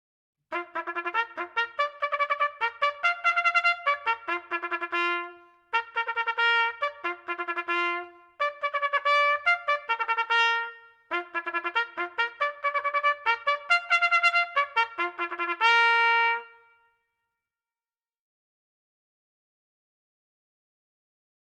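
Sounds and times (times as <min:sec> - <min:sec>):
cycling bugle call: 0:00.5 - 0:16.9.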